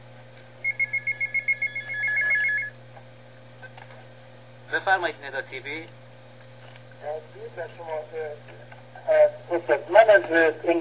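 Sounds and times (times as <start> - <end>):
low steady hum: 0.0 - 10.8
telephone ringing: 0.6 - 2.7
speech: 4.7 - 6.0, 7.0 - 10.8.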